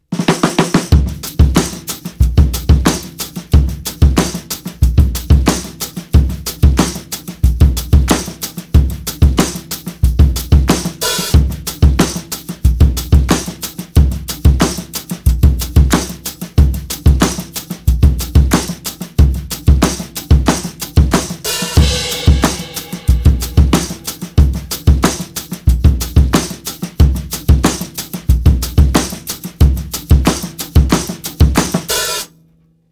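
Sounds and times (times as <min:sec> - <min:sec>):
groovy beat: 0:00.1 - 0:32.3.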